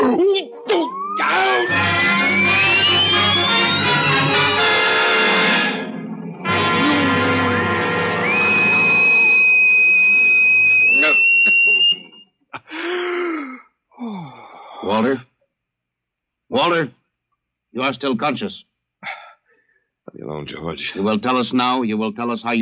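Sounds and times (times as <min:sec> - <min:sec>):
speech: 0:00.1 - 0:00.9, 0:17.9 - 0:18.7, 0:20.4 - 0:22.6
steady high tone: 0:00.4 - 0:12.2
vibration torture device rising electronic whine over harsh buzz: 0:00.9 - 0:11.2
short gasps: 0:12.7 - 0:14.9, 0:19.0 - 0:19.9.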